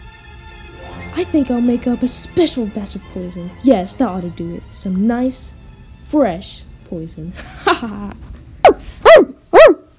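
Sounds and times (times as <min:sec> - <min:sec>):
speech: 0:01.2 - 0:09.3
dog barking: 0:08.6 - 0:09.9.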